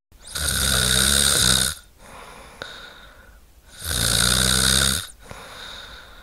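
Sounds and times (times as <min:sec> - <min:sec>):
heavy snoring of a sleeping person with severe sleep apnea: 0:00.2 - 0:01.9, 0:03.7 - 0:06.0
quiet breathing: 0:02.0 - 0:03.9, 0:05.0 - 0:06.2.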